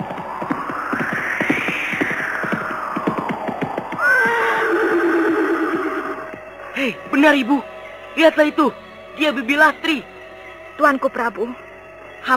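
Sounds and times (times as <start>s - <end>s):
galloping horse hoofbeats: 0.0s - 5.5s
horse neighing: 4.0s - 6.2s
speech: 7.2s - 10.1s, 10.8s - 11.6s.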